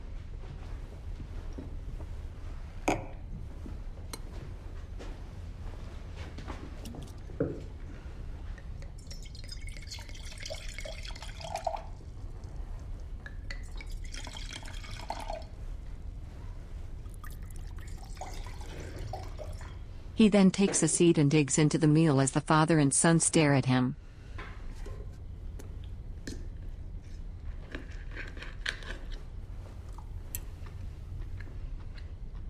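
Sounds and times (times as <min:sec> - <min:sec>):
constant low noise: 0:00.0 - 0:32.4
wine poured from a bottle into glasses at a meal: 0:08.8 - 0:12.4, 0:13.4 - 0:15.6, 0:17.1 - 0:19.8
speech: 0:20.2 - 0:24.0.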